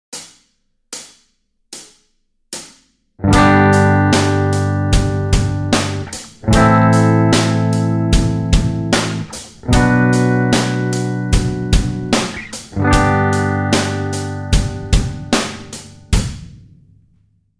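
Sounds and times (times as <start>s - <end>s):
guitar barre chords in a simple progression: 3.2s - 16.2s.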